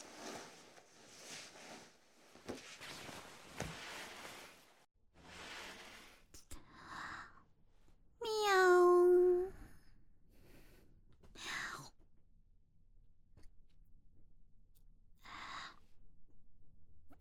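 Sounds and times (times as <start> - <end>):
person imitating a cat meow: 8.2 - 9.5.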